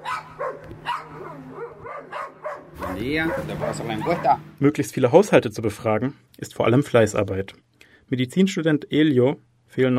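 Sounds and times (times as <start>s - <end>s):
several dogs barking, yipping and whining: 0.0s - 4.5s
speech: 3.0s - 9.9s.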